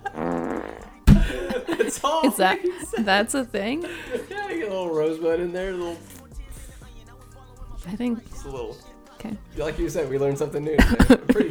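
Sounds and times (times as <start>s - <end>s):
drawn-out buzzy rippling fart: 0.0s - 1.7s
laughter: 0.0s - 11.4s
speech: 1.9s - 6.1s, 7.8s - 11.4s.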